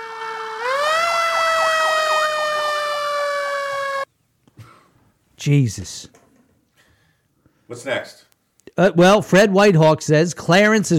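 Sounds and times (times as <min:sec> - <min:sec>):
fire truck siren: 0:00.0 - 0:04.1
faint noise: 0:03.7 - 0:10.9
speech: 0:05.4 - 0:06.2, 0:07.7 - 0:10.9.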